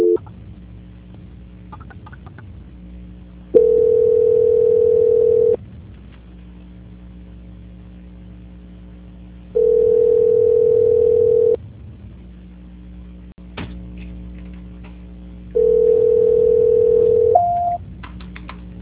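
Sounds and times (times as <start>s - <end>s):
telephone tones during a call transfer: 0.0s - 0.2s, 3.6s - 5.6s, 9.6s - 11.6s, 15.6s - 17.8s.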